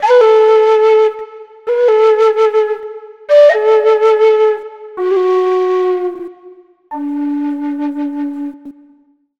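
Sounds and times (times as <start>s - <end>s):
low whistle in A major: 0.0s - 9.2s.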